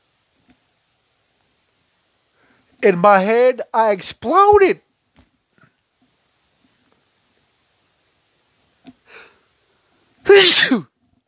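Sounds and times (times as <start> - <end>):
speech: 2.8 - 4.8, 10.3 - 10.9
person sneezing: 10.3 - 10.9.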